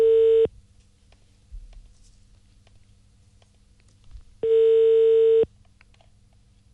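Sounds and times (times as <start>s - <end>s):
telephone ringback tone while a call waits to connect: 0.0s - 0.5s, 4.4s - 5.5s.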